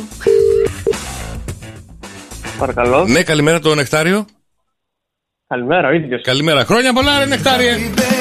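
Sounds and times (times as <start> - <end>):
telephone line tone: 0.3 - 1.0
speech: 2.6 - 4.4, 5.5 - 8.1.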